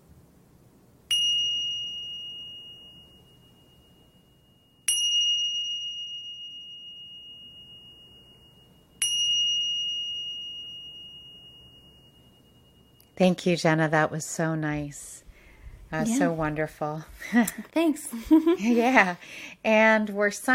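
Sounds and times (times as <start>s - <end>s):
faint low hum: 0.0s - 20.5s
meditation bell ringing: 1.1s - 13.8s
speech: 13.2s - 15.2s, 15.9s - 20.5s.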